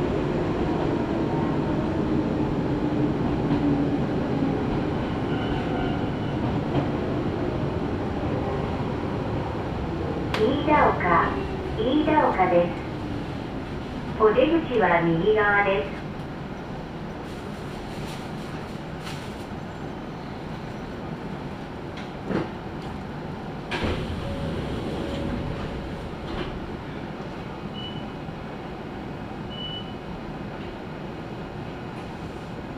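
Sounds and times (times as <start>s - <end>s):
commuter train running between stations heard from inside the car: 0.0s - 32.7s
speech: 12.0s - 12.8s, 14.2s - 16.0s.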